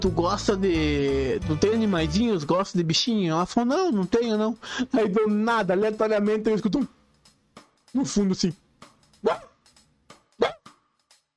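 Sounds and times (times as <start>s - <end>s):
speech: 0.0s - 7.0s, 7.9s - 8.6s, 9.2s - 9.5s
small dog barking on a mobile phone call: 9.2s - 9.5s, 10.4s - 10.7s.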